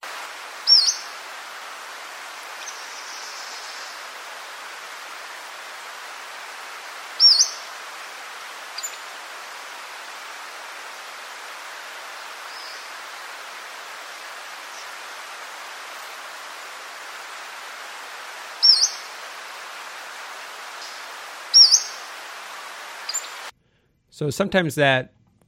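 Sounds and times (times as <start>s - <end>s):
steady hiss of forest background: 0.0s - 23.6s
Pacific-slope flycatcher whistle and chip notes: 7.2s - 7.6s, 18.6s - 19.0s
speech: 24.2s - 25.2s.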